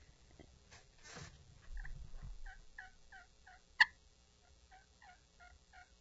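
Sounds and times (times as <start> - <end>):
soft scratchy turkey yelps on a hand-held turkey call: 1.8 - 4.0, 4.7 - 5.9.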